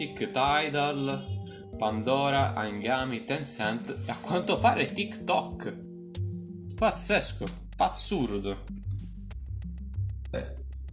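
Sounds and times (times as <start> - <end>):
speech: 0.0 - 5.9, 6.8 - 8.9
long deep burp: 10.3 - 10.6.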